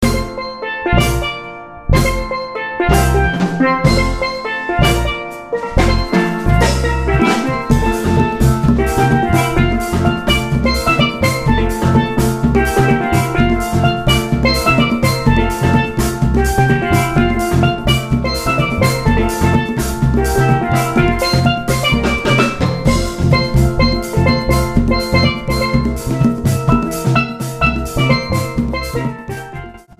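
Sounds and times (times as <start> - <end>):
steel drums: 0.0 - 29.9.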